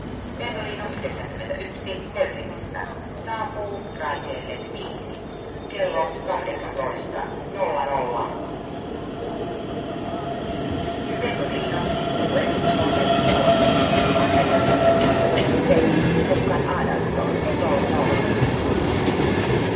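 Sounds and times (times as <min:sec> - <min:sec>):
train: 0:00.0 - 0:19.7.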